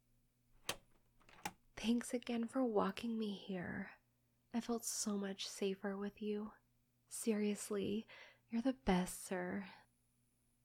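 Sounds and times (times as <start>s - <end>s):
metallic click of a door being unlocked: 0.6s - 1.5s
speech: 1.8s - 9.8s.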